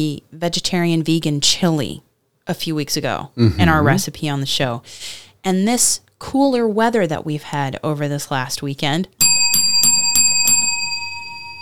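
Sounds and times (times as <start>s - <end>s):
speech: 0.0s - 9.2s
small bell ringing: 9.2s - 11.6s.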